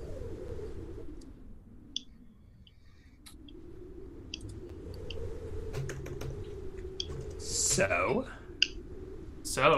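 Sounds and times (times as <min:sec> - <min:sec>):
keyboard typing: 0:05.8 - 0:06.4, 0:07.0 - 0:07.4
speech: 0:07.8 - 0:08.4, 0:09.6 - 0:09.7.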